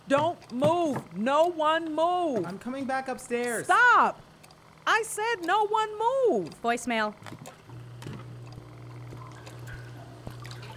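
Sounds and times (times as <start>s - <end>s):
constant low mechanical hum: 0.0s - 10.7s
speech: 0.1s - 7.6s
water dripping from a sump pump: 8.2s - 10.7s.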